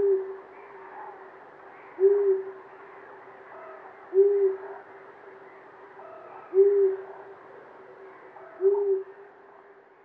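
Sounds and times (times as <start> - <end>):
long-eared owl hooting: 2.0 - 2.6, 6.0 - 7.1, 8.5 - 9.2.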